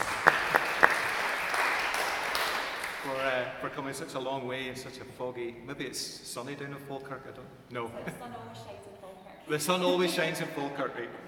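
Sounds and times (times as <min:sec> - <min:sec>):
audience applause at a talk: 0:00.0 - 0:03.4
speech: 0:03.4 - 0:11.2.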